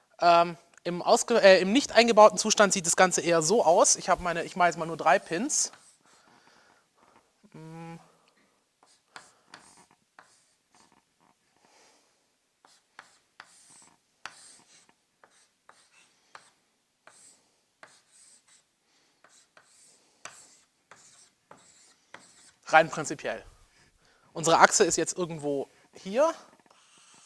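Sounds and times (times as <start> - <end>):
speech: 0.2 - 5.8, 22.7 - 23.5, 24.4 - 26.5
pen scratching on paper sketching a diagram: 4.1 - 6.4, 8.8 - 11.4, 12.6 - 23.0, 26.5 - 27.2.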